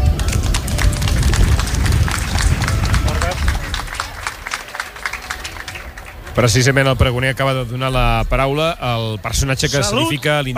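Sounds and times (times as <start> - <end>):
crowd applause: 0.0 - 7.2
speech: 6.4 - 10.5.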